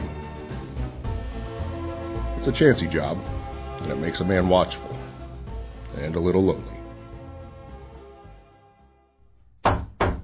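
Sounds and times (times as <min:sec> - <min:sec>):
quiet music: 0:00.0 - 0:09.3
speech: 0:02.4 - 0:05.0, 0:05.9 - 0:06.7
knocking on a wooden door: 0:09.6 - 0:10.2.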